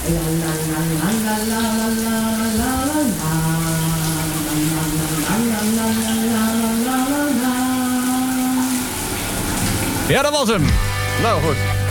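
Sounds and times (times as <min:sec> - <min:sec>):
person singing or humming a slow wandering melody: 0:00.0 - 0:08.8
shower water running: 0:00.0 - 0:11.8
speech: 0:00.1 - 0:02.2, 0:10.1 - 0:11.8.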